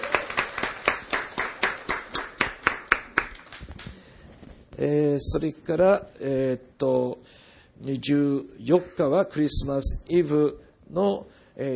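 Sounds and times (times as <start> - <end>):
audience clapping rhythmically: 0.0 - 4.0
speech: 4.8 - 7.2, 7.8 - 11.7.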